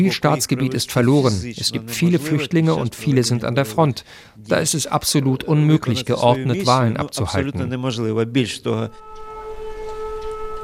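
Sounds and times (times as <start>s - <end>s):
speech: 0.0s - 9.3s
air raid siren wailing: 8.9s - 10.6s.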